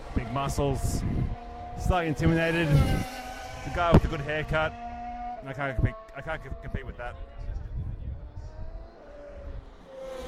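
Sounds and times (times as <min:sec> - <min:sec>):
cars speeding around a bend: 0:00.0 - 0:06.2, 0:08.2 - 0:10.2
speech: 0:00.2 - 0:04.8, 0:05.4 - 0:07.5.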